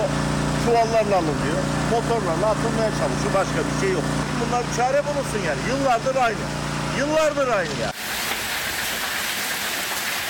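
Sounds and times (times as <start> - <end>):
speech: 0.7 - 8.2
heavy rain shower with hail pounding streets: 8.0 - 10.2.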